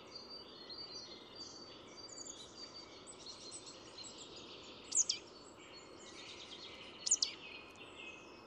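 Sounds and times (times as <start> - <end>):
chorus of small birds: 0.0 - 8.4
Marsh tit Poecile palustris calls: 4.9 - 5.3, 7.0 - 7.4.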